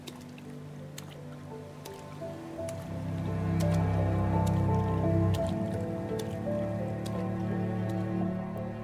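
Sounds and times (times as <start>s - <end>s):
boots splashing through shallow murky water: 0.0s - 8.8s.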